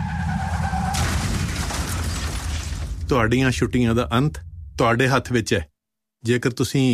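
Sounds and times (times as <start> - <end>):
car tire screech: 0.0 - 2.6
car crash with crunching and shattering: 0.0 - 3.2
speech: 3.1 - 6.9.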